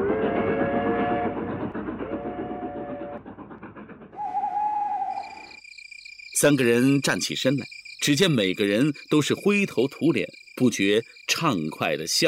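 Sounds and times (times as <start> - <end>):
train rumbling past overhead near Changbai Mountain: 0.0 - 5.7
sustained whining, squealing tones of a train: 2.1 - 5.6
speech: 6.4 - 12.2.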